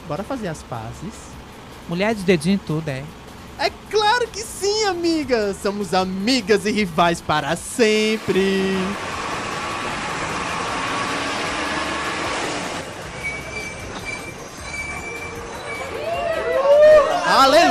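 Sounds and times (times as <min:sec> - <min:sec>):
bus engine rumble pulling in to the stop: 0:00.0 - 0:17.6
road noise: 0:00.0 - 0:17.6
speech: 0:00.1 - 0:09.1
high squealing bus brakes: 0:08.0 - 0:17.6.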